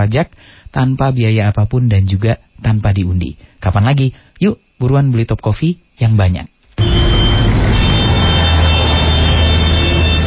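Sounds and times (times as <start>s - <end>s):
speech: 0.0s - 6.5s
engines idling in a traffic jam on a street in Jakarta: 6.8s - 10.2s.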